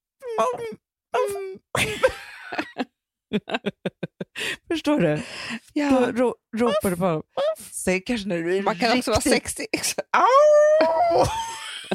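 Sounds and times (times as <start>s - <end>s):
speech: 0.4s - 2.0s, 3.3s - 3.8s, 4.8s - 11.9s
laughter: 1.8s - 4.6s
person imitating a dog's howl with rougher yelps: 10.2s - 11.2s.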